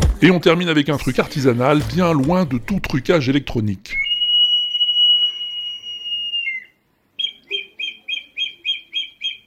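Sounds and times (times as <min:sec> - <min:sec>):
speech: 0:00.2 - 0:04.0
water-filled terracotta pots whistling like birdsong: 0:04.0 - 0:09.1.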